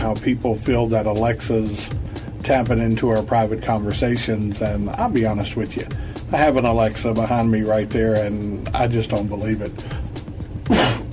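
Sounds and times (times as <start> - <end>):
speech: 0.0 - 10.0, 10.7 - 11.0
man sneezing: 10.6 - 11.1.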